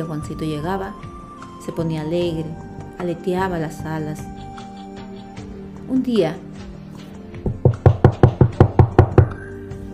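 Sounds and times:
speech: 0.0 - 4.4, 5.9 - 6.5
firm knocks on a wooden door: 7.4 - 9.3.

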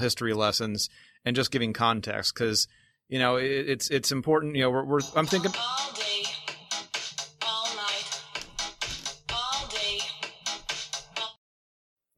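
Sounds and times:
speech: 0.0 - 6.0
mobile phone ringtone playing a bouncy beat-driven pop song: 5.0 - 11.4.

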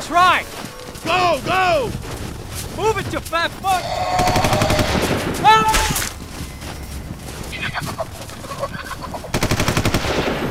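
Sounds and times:
speech: 0.1 - 2.1, 2.8 - 4.8
bird-like squawk: 3.6 - 6.0, 7.4 - 9.3
automatic gunfire aimed at a bird in the trees: 9.3 - 10.4.

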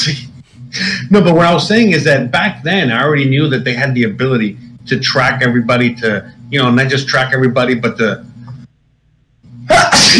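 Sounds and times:
speech: 0.0 - 8.3, 10.0 - 10.1
person sneezing: 9.7 - 10.1.

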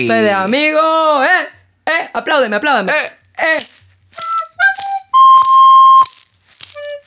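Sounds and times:
speech: 0.0 - 3.9
maracas being shaken: 2.8 - 7.0
bright whistling tones: 4.2 - 6.2.

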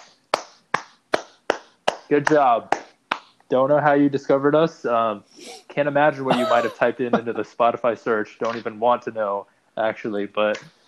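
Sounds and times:
sharp hand claps into a microphone: 0.0 - 3.4, 8.4 - 8.7
speech: 2.1 - 2.8, 3.5 - 10.8
laughter: 6.1 - 8.3.

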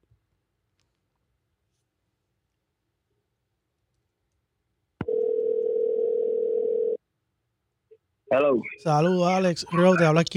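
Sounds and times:
telephone dial tone while a call is being placed: 5.0 - 7.0
speech: 8.3 - 10.3.

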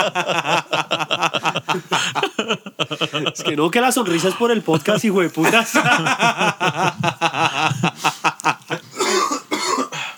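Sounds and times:
speech: 0.0 - 0.6, 2.5 - 7.2
person laughing: 0.0 - 9.0
person coughing: 4.1 - 4.8, 8.9 - 10.1.

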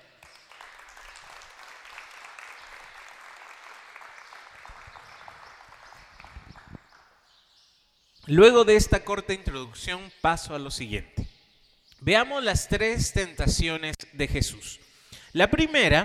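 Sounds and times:
crowd applauding: 0.0 - 7.1
speech: 8.3 - 11.2, 12.0 - 16.0.

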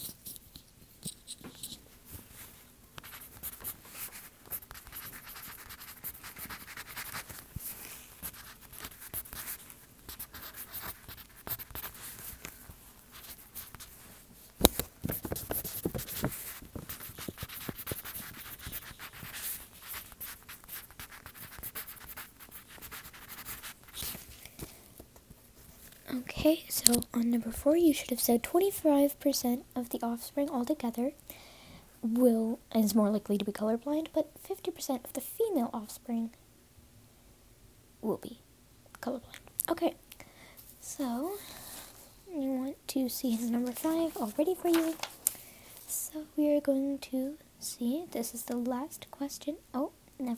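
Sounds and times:
several pencils scratching and scribbling on paper: 0.0 - 1.8, 3.0 - 12.4, 13.1 - 14.0, 15.1 - 24.2, 43.2 - 45.1
speech: 26.5 - 31.3, 32.1 - 36.4, 38.1 - 38.4, 39.0 - 40.0, 41.0 - 41.6, 42.9 - 45.1, 46.2 - 50.3.

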